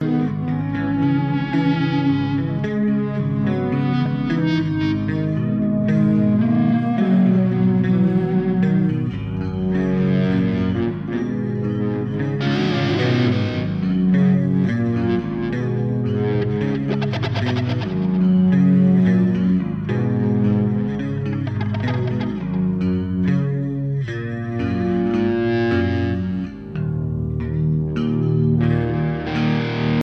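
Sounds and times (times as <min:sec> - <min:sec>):
bass guitar doodle: 0:00.0 - 0:30.0.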